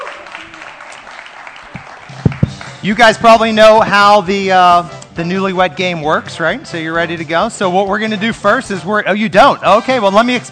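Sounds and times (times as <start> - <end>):
audience applause greeting game show contestants: 0.0 - 3.5
speech: 2.8 - 10.5.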